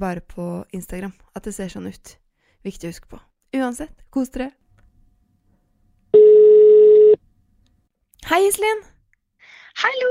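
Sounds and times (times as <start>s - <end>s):
speech: 0.0s - 4.6s, 8.2s - 8.9s, 9.8s - 10.0s
telephone ringing tone of an incoming call: 6.2s - 7.2s.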